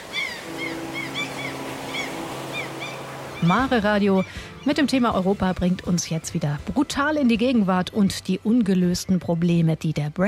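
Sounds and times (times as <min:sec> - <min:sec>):
high gull-like cries: 0:00.0 - 0:04.4
sea waves breaking along the shore: 0:00.0 - 0:05.5
low engine hum: 0:00.4 - 0:06.8
speech: 0:03.4 - 0:10.2.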